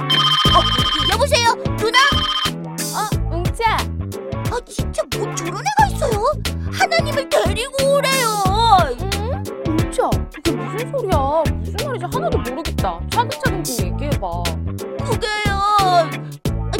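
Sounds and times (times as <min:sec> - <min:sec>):
telephone ringing in electronic warbling bursts: 0:00.1 - 0:01.3, 0:02.0 - 0:02.5
child talking: 0:00.5 - 0:02.2, 0:02.9 - 0:03.9, 0:04.5 - 0:14.5, 0:15.1 - 0:16.7.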